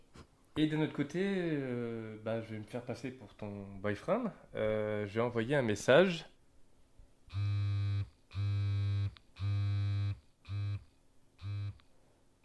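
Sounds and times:
speech: 0.6 - 6.3
connected vibrator buzzing an SOS signal in Morse code: 7.3 - 10.8.

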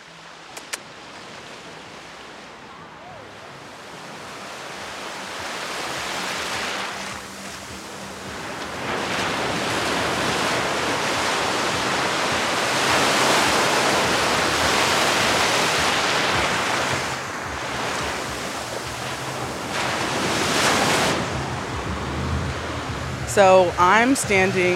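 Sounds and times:
ocean waves crashing on the shore at Tulum: 0.0 - 24.7
wind noise: 5.4 - 24.7
speech: 23.4 - 24.7.

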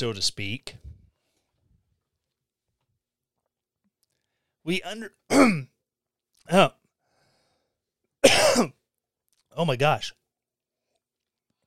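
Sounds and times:
speech: 0.0 - 0.8, 4.7 - 5.7, 6.4 - 6.8, 8.2 - 8.8, 9.6 - 10.2
person clearing throat with something stuck in the throat: 5.3 - 5.8, 8.2 - 8.8.

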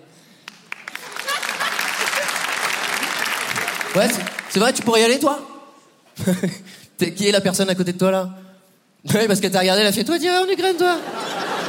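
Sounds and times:
audience applause: 0.4 - 5.0
laughter: 1.0 - 4.3, 10.9 - 11.6
speech: 3.9 - 5.5, 6.2 - 8.4, 9.0 - 11.2.

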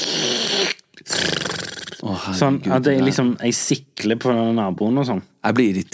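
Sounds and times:
voice imitating deep heavy snoring: 0.0 - 2.2
speech: 2.2 - 5.9.

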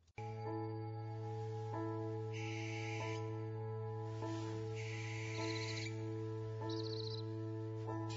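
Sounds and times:
steady low humming drone: 0.2 - 8.1
barn owl screeching: 2.3 - 3.3, 4.8 - 6.0.

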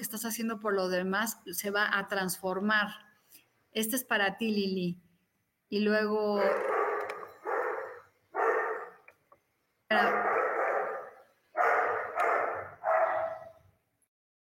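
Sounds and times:
speech: 0.1 - 3.1, 3.7 - 5.0, 5.7 - 6.7
dog barking sharply: 6.4 - 9.0, 10.0 - 13.6.

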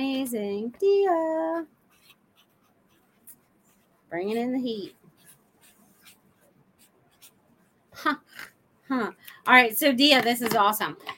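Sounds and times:
speech: 0.2 - 1.8, 4.1 - 5.0, 8.0 - 11.1
pen scratching across paper: 1.8 - 7.8.

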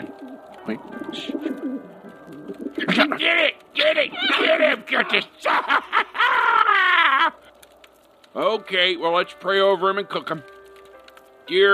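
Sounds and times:
pigeon cooing: 0.0 - 3.2
speech: 0.7 - 6.0, 8.4 - 10.5, 11.5 - 11.7
laughter: 2.8 - 3.3, 4.2 - 7.5.

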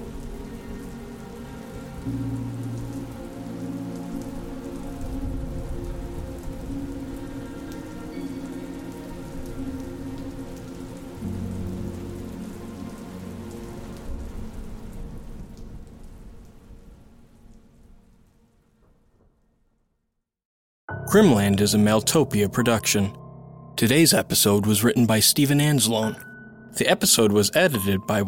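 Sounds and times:
heavy rain drumming on surfaces: 0.0 - 19.4
speech: 2.0 - 2.4, 21.1 - 23.2, 23.8 - 28.2.

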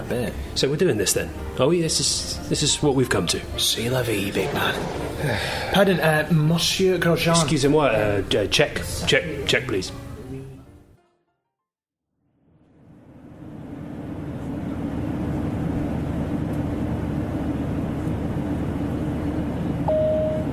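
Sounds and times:
speech: 0.1 - 10.0
airplane cabin drone on approach for landing: 3.5 - 6.4, 12.4 - 20.5.

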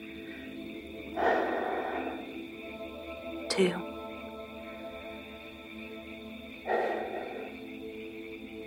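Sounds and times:
deep breath: 0.2 - 2.5, 6.7 - 7.7
speech: 3.6 - 3.9.

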